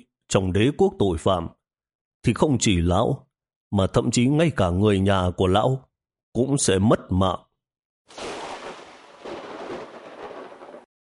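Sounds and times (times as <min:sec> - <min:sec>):
speech: 0:00.3 - 0:01.6, 0:02.2 - 0:07.5
thunder rumbling as a storm gathers: 0:08.1 - 0:10.9.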